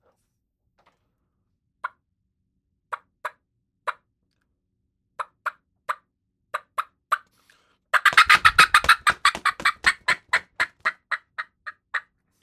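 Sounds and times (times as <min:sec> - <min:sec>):
hat beaten to imitate turkey wing flapping: 0:08.0 - 0:10.9
imitated hen turkey fly-down clucking calls: 0:08.0 - 0:12.0.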